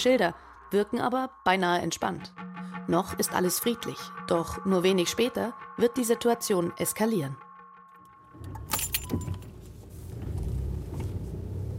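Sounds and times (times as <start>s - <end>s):
speech: 0.0s - 7.5s
police commander's car engine rumble driving toward a border crossing: 8.4s - 11.7s
jangling clicks: 8.5s - 9.5s.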